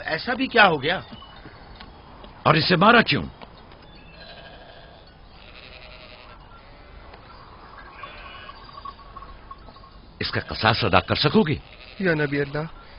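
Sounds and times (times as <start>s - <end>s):
constant noisy outdoor background: 0.0s - 12.9s
speech: 0.1s - 1.2s, 2.4s - 3.4s, 10.2s - 12.8s
flock of sheep bleating: 4.1s - 7.2s, 7.8s - 8.7s, 10.2s - 12.9s.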